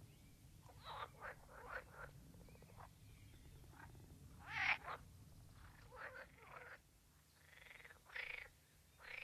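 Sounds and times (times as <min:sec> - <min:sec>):
low steady background hum: 0:00.0 - 0:09.2
green frog croaking in rasping pulsed bursts: 0:00.7 - 0:02.9, 0:03.8 - 0:05.0, 0:05.6 - 0:06.8, 0:07.4 - 0:09.2.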